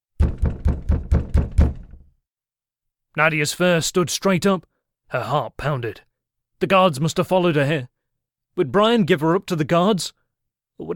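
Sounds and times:
firm knocks on a wooden door: 0:00.2 - 0:02.1
speech: 0:03.2 - 0:08.0, 0:08.6 - 0:10.2, 0:10.8 - 0:10.9.

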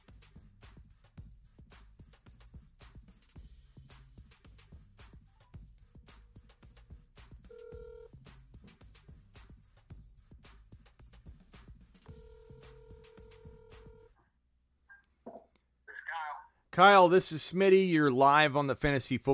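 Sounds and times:
long steady electronic telephone tones as a call is placed: 0:07.5 - 0:08.1, 0:12.1 - 0:14.1
speech: 0:16.8 - 0:19.3.

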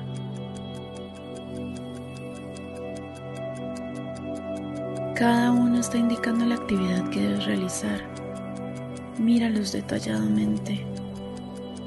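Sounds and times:
clocks ticking: 0:00.0 - 0:11.8
low tonal drone: 0:00.0 - 0:11.8
speech: 0:05.2 - 0:08.1, 0:09.2 - 0:10.9.

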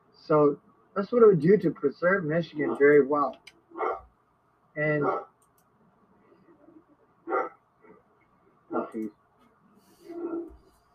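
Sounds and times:
speech: 0:00.3 - 0:03.5, 0:04.8 - 0:05.3, 0:09.0 - 0:09.2
two big dogs barking at someone walking by the house: 0:03.7 - 0:04.1, 0:05.0 - 0:05.3, 0:07.3 - 0:07.6, 0:08.7 - 0:09.0.

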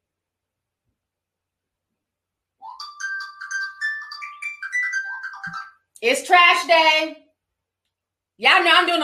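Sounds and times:
phone alarm playing a bright chiming electronic melody: 0:02.6 - 0:05.8
speech: 0:05.5 - 0:07.2, 0:08.4 - 0:09.0.

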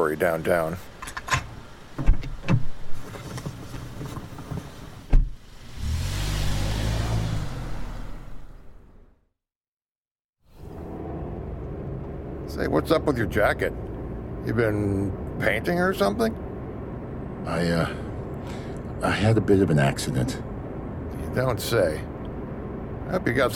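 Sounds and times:
speech: 0:00.0 - 0:01.2, 0:12.6 - 0:16.4, 0:17.4 - 0:20.5, 0:21.3 - 0:22.1, 0:23.1 - 0:23.5
taxi cab engine humming with a low rumble: 0:00.0 - 0:09.2, 0:10.5 - 0:23.5
road noise of taxi driving through heavy evening traffic: 0:00.0 - 0:09.3, 0:10.4 - 0:23.5
taxi cab door thumping and clicking: 0:04.2 - 0:05.4.

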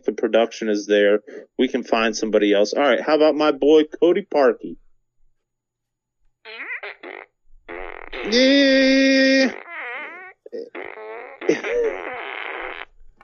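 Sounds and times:
speech: 0:00.2 - 0:04.8, 0:08.3 - 0:09.7, 0:10.5 - 0:11.8
fart sound effects: 0:06.5 - 0:13.2.

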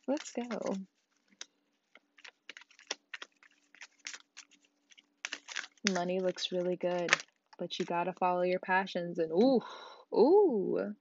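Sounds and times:
deck of tarot cards being shuffled: 0:00.0 - 0:08.2
speech: 0:00.1 - 0:01.0, 0:05.8 - 0:10.9.

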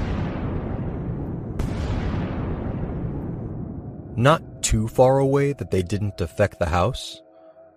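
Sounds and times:
sharp crack: 0:00.0 - 0:03.5
distant explosions rumbling: 0:00.0 - 0:06.2
speech: 0:04.2 - 0:07.2.

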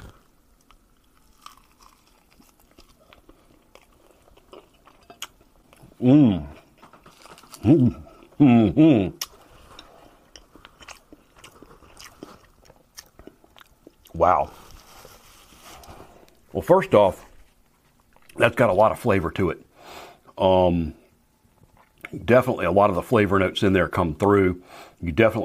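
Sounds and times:
chewing of a chicken wing topped with hot sauce: 0:00.0 - 0:08.4, 0:09.1 - 0:16.5, 0:17.2 - 0:18.8, 0:21.0 - 0:22.2
speech: 0:06.0 - 0:06.5, 0:07.6 - 0:09.2, 0:16.6 - 0:17.3, 0:18.4 - 0:19.7, 0:20.4 - 0:21.0, 0:22.1 - 0:25.4.

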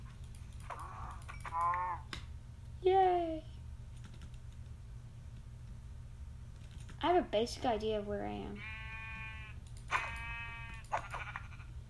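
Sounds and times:
low hum: 0:00.0 - 0:11.8
video game sheep bleating: 0:00.9 - 0:02.1, 0:08.6 - 0:11.7
speech: 0:01.6 - 0:02.2, 0:07.0 - 0:08.7.

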